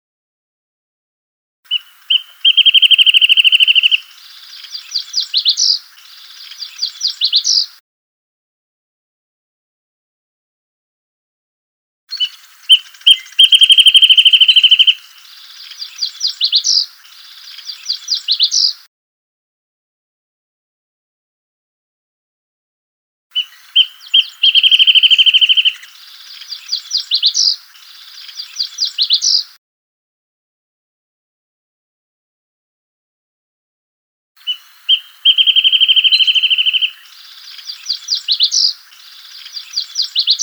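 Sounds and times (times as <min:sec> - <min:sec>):
wrentit call and song: 0:01.7 - 0:07.8, 0:12.1 - 0:18.9, 0:23.3 - 0:29.6, 0:34.4 - 0:40.4.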